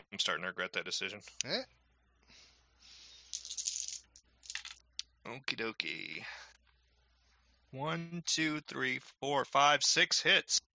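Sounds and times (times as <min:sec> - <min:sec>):
speech: 0:00.1 - 0:02.4, 0:05.2 - 0:06.4, 0:07.7 - 0:10.7
pool of dice being shaken and rolled in a tabletop role-playing game: 0:03.3 - 0:04.8.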